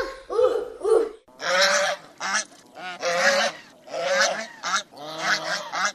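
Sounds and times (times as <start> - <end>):
goose honking: 1.3 - 5.9.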